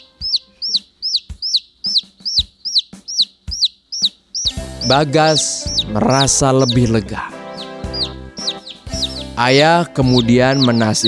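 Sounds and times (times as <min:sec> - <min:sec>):
young chick peeping: 0:00.0 - 0:11.0
speech: 0:04.8 - 0:07.3, 0:09.4 - 0:11.0.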